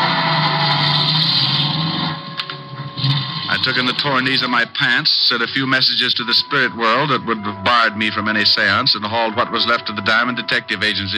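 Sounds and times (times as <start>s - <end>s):
car engine droning as the vehicle pulls away: 0.0s - 4.0s
speech: 3.6s - 11.1s.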